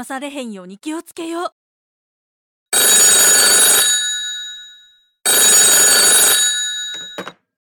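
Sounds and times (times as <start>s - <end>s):
speech: 0.0s - 1.6s
telephone bell ringing: 2.8s - 7.4s
telephone receiver clicks: 6.9s - 7.4s.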